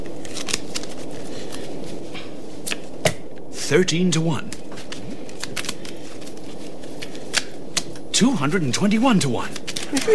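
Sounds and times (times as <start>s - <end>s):
deck of playing cards being shuffled: 0.0s - 3.1s, 4.3s - 10.1s
speech: 3.7s - 4.6s, 8.2s - 10.1s.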